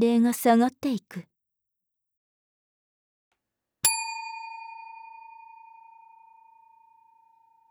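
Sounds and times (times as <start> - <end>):
speech: 0.0 - 1.3
bell ringing: 3.9 - 7.4.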